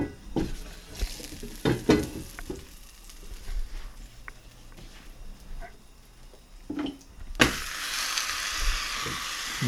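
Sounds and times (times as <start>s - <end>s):
cookware knocking and scraping: 0.0s - 0.6s, 1.3s - 2.7s
tortilla sizzling in a hot frying pan: 0.0s - 9.6s.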